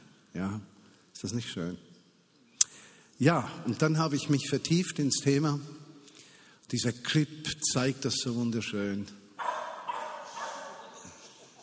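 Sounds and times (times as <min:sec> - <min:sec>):
speech: 0:00.4 - 0:01.9, 0:03.2 - 0:05.8, 0:06.7 - 0:09.2
dog barking with a whining, yelping edge: 0:09.4 - 0:11.0.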